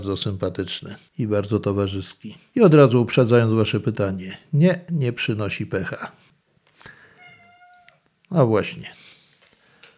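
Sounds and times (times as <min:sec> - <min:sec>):
speech: 0:00.0 - 0:06.2, 0:08.3 - 0:09.0
faint room noise: 0:00.0 - 0:09.9
black cat meowing: 0:07.2 - 0:08.0.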